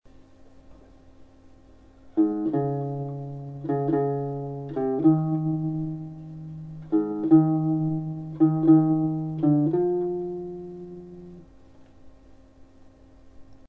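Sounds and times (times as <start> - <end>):
wound gut string sound: 2.2 - 11.5.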